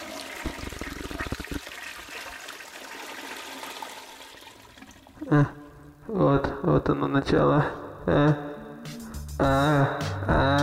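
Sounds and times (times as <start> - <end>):
toilet flushing: 0.0 - 5.3
speech: 5.3 - 8.5, 9.4 - 10.6.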